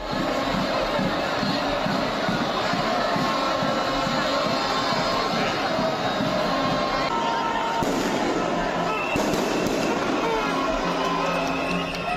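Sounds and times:
dense outdoor crowd roaring and chattering at a street celebration: 0:00.0 - 0:12.1
fireworks bursting: 0:07.7 - 0:10.6.

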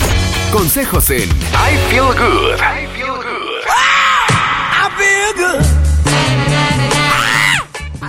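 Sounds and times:
band playing a bouncing bass line: 0:00.1 - 0:02.6, 0:05.6 - 0:08.0
speech: 0:00.5 - 0:03.2
person shouting a loud wow yell: 0:03.3 - 0:04.9, 0:07.1 - 0:07.7.

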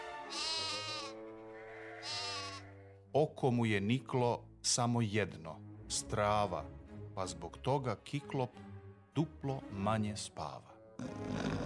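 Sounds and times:
flock of sheep bleating: 0:00.2 - 0:03.0
speech: 0:03.1 - 0:11.6.

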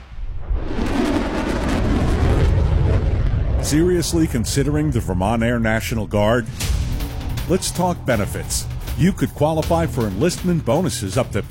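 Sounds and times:
dense barrage of fireworks booming and crackling: 0:00.0 - 0:05.4
speech: 0:03.7 - 0:06.7, 0:07.5 - 0:11.4.

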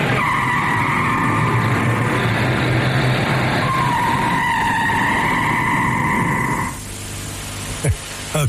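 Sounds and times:
car tires squealing as the vehicle skids: 0:00.0 - 0:02.3, 0:03.5 - 0:06.8
car engine rumble: 0:00.0 - 0:08.4.

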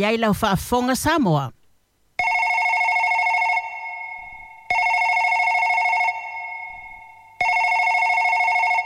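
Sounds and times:
speech: 0:00.0 - 0:01.6
telephone ringing with electronic trills: 0:02.2 - 0:08.8.

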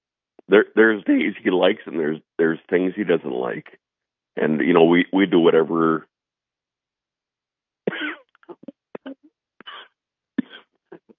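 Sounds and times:
speech: 0:00.5 - 0:03.8, 0:04.4 - 0:06.1
raspy coughing: 0:07.9 - 0:08.2, 0:08.9 - 0:09.8, 0:10.4 - 0:10.6.

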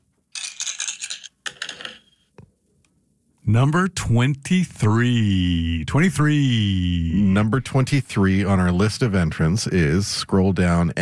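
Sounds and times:
digital dice rattling and clattering: 0:00.3 - 0:02.2
speech: 0:03.5 - 0:11.0.

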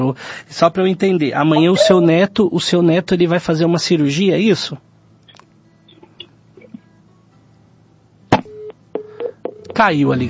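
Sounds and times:
speech: 0:00.0 - 0:04.9, 0:09.8 - 0:10.2
short electronic beeps and tones of a dropping phone line: 0:01.6 - 0:02.1.

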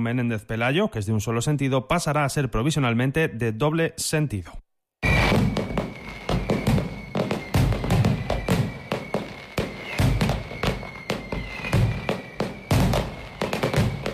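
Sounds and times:
speech: 0:00.0 - 0:04.7
faint whistling tone: 0:05.0 - 0:14.1
fireworks display bursting: 0:05.0 - 0:14.1.

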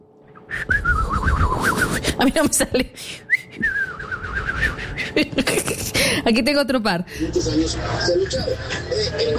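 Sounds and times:
person whistling a bird trill imitation: 0:00.5 - 0:02.0, 0:03.3 - 0:05.0
speech: 0:02.2 - 0:03.7, 0:05.2 - 0:09.3.

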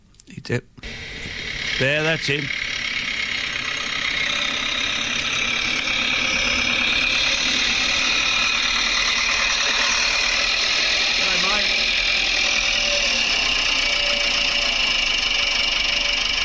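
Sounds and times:
speech: 0:00.5 - 0:01.2, 0:01.8 - 0:02.6
small red tractor engine idling outdoors: 0:00.8 - 0:16.4.

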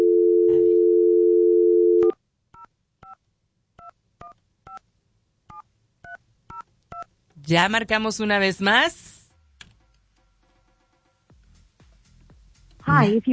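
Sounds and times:
steady telephone dial tone: 0:00.0 - 0:02.2
speech: 0:07.5 - 0:09.1, 0:13.0 - 0:13.3.

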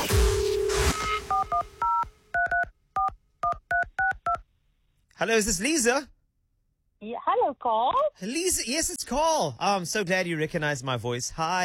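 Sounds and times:
burst of noise: 0:00.0 - 0:01.8
telephone keypad dialing tones: 0:01.3 - 0:04.4
speech: 0:05.2 - 0:06.2, 0:07.0 - 0:11.6.

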